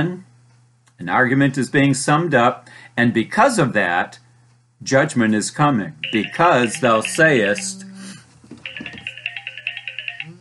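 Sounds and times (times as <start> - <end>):
speech: 0.0 - 0.3, 1.0 - 4.2, 4.8 - 7.9
low constant hum: 0.0 - 10.3
phone ringtone trilling in rapid high-pitched pulses: 6.0 - 7.8, 8.6 - 10.3.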